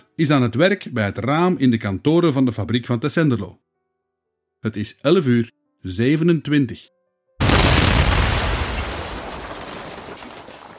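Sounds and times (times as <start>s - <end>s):
speech: 0.2s - 3.7s, 4.6s - 7.0s
massive factory explosion: 7.4s - 10.4s
rumbling crackling debris: 7.4s - 10.7s.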